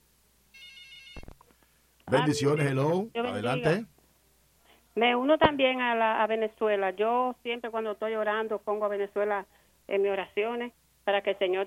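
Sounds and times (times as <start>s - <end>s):
electronic telephone ringtone signalling an incoming call: 0.6s - 1.2s, 2.1s - 3.8s
speech: 2.1s - 3.9s, 5.0s - 11.6s.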